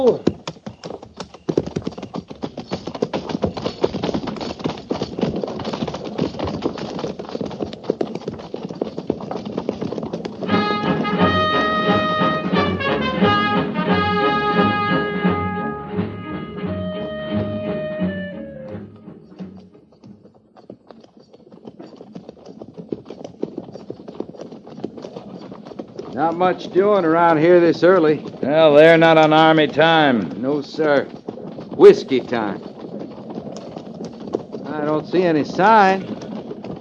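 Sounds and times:
speech: 0.0 - 0.3, 26.4 - 31.1, 31.8 - 32.7, 35.0 - 36.2
cavalry horses clip-clopping at a walk in pairs: 0.0 - 36.7
sustained brass-like musical tones: 10.5 - 19.2.

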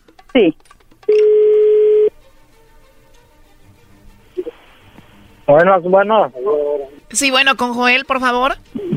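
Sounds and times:
speech: 0.4 - 0.7, 5.5 - 8.7
telephone tone of a call being placed: 1.1 - 2.1.

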